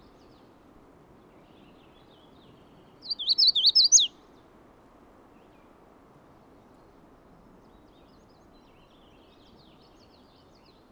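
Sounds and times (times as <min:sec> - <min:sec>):
Magnolia warbler singing: 0:03.0 - 0:04.1.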